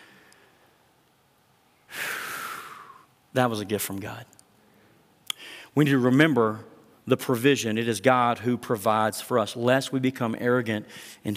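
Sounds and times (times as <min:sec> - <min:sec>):
deep breath drawn in: 0:01.9 - 0:03.1, 0:04.6 - 0:05.8, 0:10.9 - 0:11.2
speech: 0:03.3 - 0:04.4, 0:05.8 - 0:11.3.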